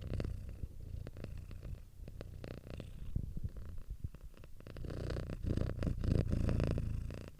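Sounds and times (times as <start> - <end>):
cat purring: 0.0 - 7.3.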